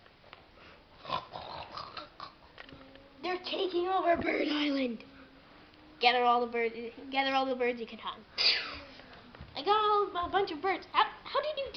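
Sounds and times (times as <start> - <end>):
faint noisy background: 0.0 - 11.7
pigs snorting and grunting in a video game: 1.0 - 2.4
speech: 3.7 - 5.1, 6.0 - 8.4, 9.6 - 11.7.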